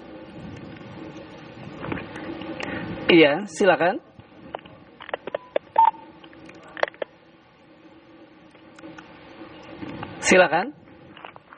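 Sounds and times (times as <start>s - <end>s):
low steady hiss: 0.0s - 11.5s
speech: 3.1s - 4.1s, 10.3s - 10.8s
telephone line dialing tone blip: 5.3s - 6.2s.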